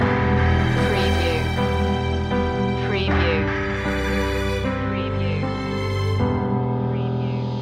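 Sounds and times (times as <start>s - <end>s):
car advert action chase music loop breakdown: 0.0s - 7.5s.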